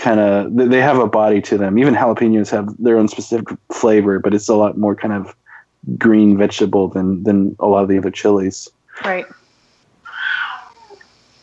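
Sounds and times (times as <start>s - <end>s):
speech: 0.0s - 9.4s
cat meowing: 10.0s - 11.0s.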